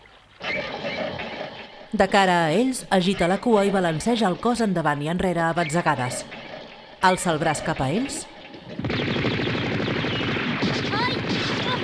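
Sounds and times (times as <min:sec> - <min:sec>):
speech: 0:01.9 - 0:06.4, 0:07.0 - 0:08.3
rapid automatic gunfire: 0:08.6 - 0:11.8.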